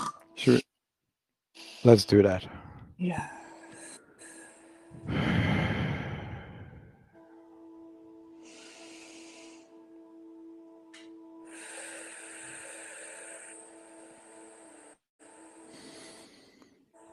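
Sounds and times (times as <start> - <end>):
speech: 0.4 - 0.7, 1.8 - 3.4
deep breath: 1.6 - 7.2, 8.4 - 9.8, 11.5 - 15.0, 15.6 - 16.9
low tonal hum: 2.0 - 17.1.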